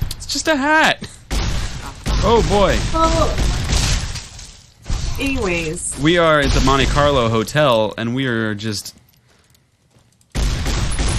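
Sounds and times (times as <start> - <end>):
speech: 0.3 - 1.2, 2.2 - 3.5, 5.2 - 9.0
video game shotgun gunfire in a hotel hallway gunfight: 1.3 - 7.1, 10.4 - 11.1.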